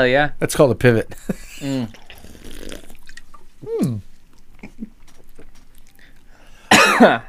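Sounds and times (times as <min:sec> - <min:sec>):
speech: 0:00.0 - 0:02.0, 0:07.0 - 0:07.2
strained vocal sounds: 0:01.4 - 0:06.5
sipping and gulping mango fizzy drink: 0:01.4 - 0:06.8
loud harsh cough from fizzy drink bubbles: 0:06.7 - 0:07.2.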